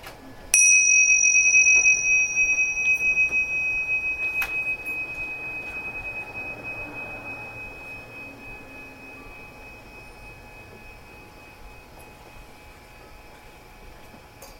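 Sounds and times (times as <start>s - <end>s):
soft room noise: 0.0s - 14.5s
single bell struck and ringing: 0.6s - 12.1s.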